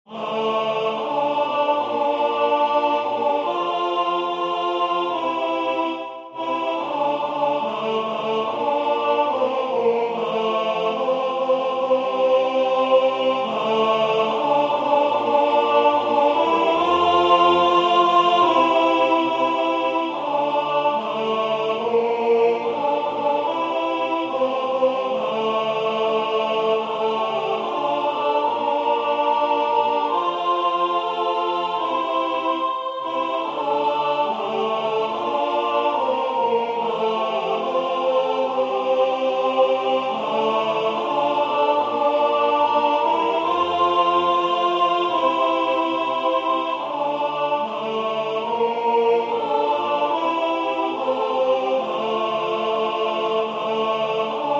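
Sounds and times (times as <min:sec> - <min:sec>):
alto voice singing: 0:00.0 - 0:54.5.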